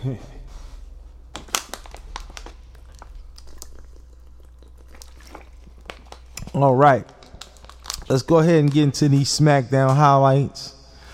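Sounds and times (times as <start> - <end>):
speech: 0.0 - 0.4, 6.6 - 7.2, 8.1 - 10.8
person sipping and swallowing water: 0.8 - 8.1.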